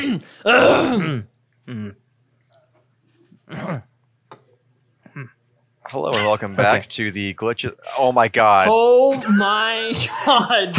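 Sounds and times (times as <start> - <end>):
loud rasping throat-clearing coughs: 0.0 - 1.3, 3.5 - 3.9, 6.1 - 6.6, 10.0 - 10.7
speech: 0.0 - 2.0, 3.5 - 3.9, 5.2 - 10.7.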